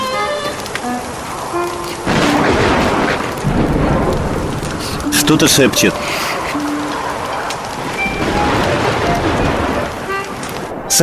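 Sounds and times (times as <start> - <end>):
rain pouring and streaming down a window glass: 0.0 - 11.0
speech: 5.3 - 6.5.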